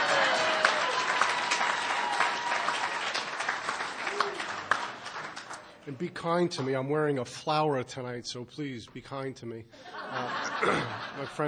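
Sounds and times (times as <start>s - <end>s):
audience applause: 0.0s - 5.8s
speech: 5.9s - 11.4s
laughter: 9.8s - 11.4s.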